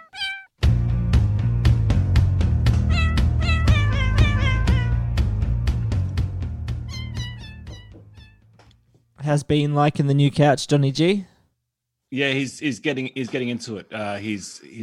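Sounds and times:
cat meowing: 0:00.0 - 0:00.5, 0:02.8 - 0:05.1, 0:06.9 - 0:08.4
steady rhythmic beat: 0:01.8 - 0:08.3
speech: 0:09.3 - 0:11.3, 0:12.1 - 0:14.8.

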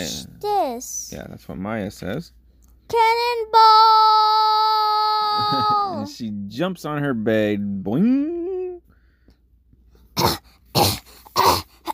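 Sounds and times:
speech: 0:00.0 - 0:04.7, 0:05.4 - 0:08.5
voice imitating coughing: 0:10.2 - 0:11.9.

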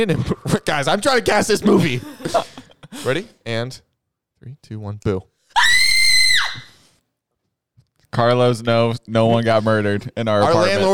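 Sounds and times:
speech: 0:00.0 - 0:05.3, 0:08.1 - 0:10.9
single loud high-pitched scream: 0:05.6 - 0:06.8.

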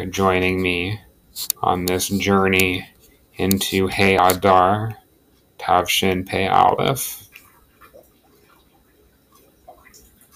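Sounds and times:
speech: 0:00.0 - 0:05.0, 0:05.6 - 0:07.2
water filter dripping and bubbling: 0:07.2 - 0:10.3.

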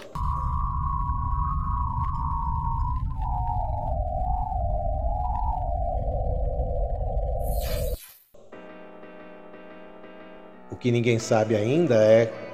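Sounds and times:
dense rumble of static from converted radio waves: 0:00.0 - 0:07.9
eerie whistling tone from Venus radio waves converted to sound: 0:00.0 - 0:09.2
speech: 0:10.8 - 0:12.4.

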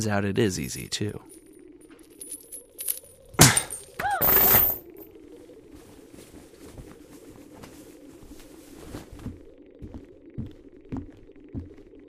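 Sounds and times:
speech: 0:00.0 - 0:01.4
low steady hum: 0:00.0 - 0:12.0
metal handcuffs shattering with a metallic crack: 0:02.0 - 0:05.0.

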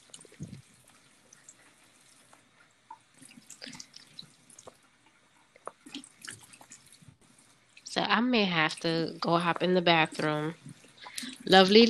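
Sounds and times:
warm water splashing as hands rinse a face during a spa treatment: 0:00.0 - 0:11.8
speech: 0:08.0 - 0:10.7, 0:11.5 - 0:11.8.

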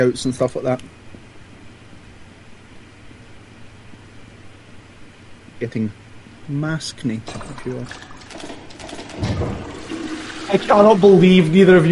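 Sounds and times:
speech: 0:00.0 - 0:01.0, 0:05.6 - 0:08.5, 0:09.2 - 0:09.7, 0:10.5 - 0:11.9
toilet flushing: 0:07.3 - 0:11.3.

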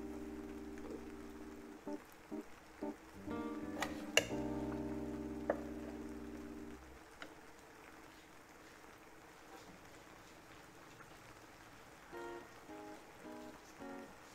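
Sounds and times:
low steady hum: 0:00.0 - 0:07.3
light rain patter: 0:00.0 - 0:14.3.

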